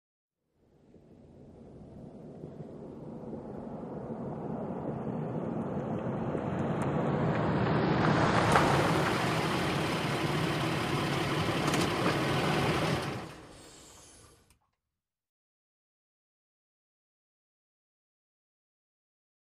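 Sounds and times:
SUV truck driving at 55-65 mph and slowing to stop: 1.0 - 14.5
truck SUV engine shutting off: 2.6 - 14.5.

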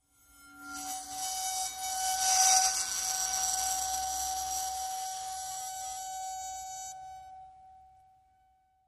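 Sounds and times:
bowed metal vibrate bowl: 0.0 - 8.4.

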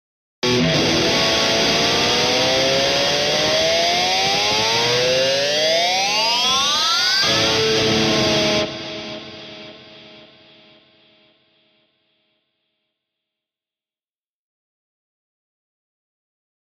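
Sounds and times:
electric guitar scream: 0.4 - 10.3.

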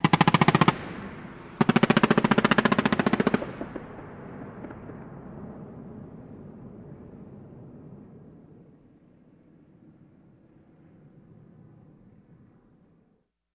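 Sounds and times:
modern machine gun firing: 0.0 - 5.0.

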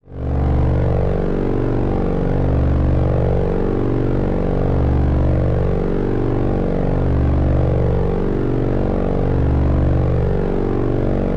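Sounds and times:
engine hum: 0.0 - 11.3.

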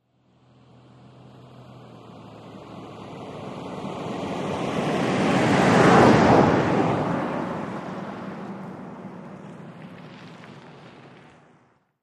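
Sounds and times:
Mitsubishi Montero passing by: 0.3 - 11.5.

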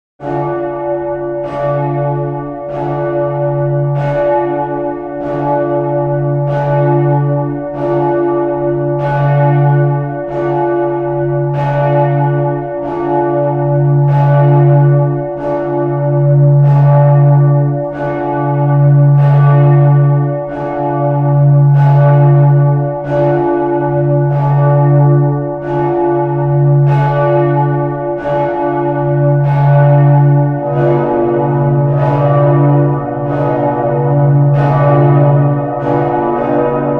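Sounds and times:
cathedral bell tower bells ringing: 0.2 - 36.9.

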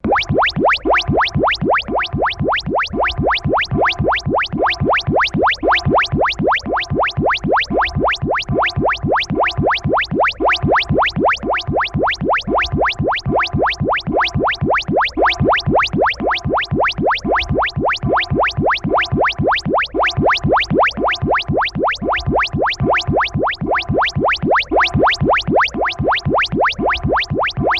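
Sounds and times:
electronic bweep beep loop: 0.0 - 27.7.

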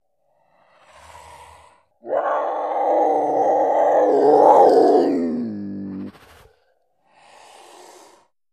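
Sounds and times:
cougar growling: 2.0 - 6.5.

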